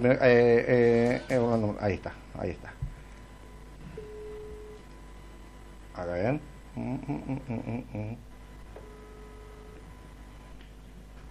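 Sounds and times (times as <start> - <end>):
speech: 0.0 - 2.8, 6.0 - 8.3
low hum: 0.0 - 11.2
telephone ringback tone while a call is placed: 3.9 - 4.8, 8.8 - 9.8.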